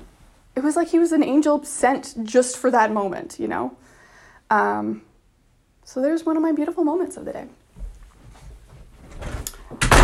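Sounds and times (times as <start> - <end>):
speech: 0.6 - 3.9, 4.5 - 5.1, 5.9 - 7.6
door sliding or swinging shut with rumble, scrape and bump: 9.1 - 10.0.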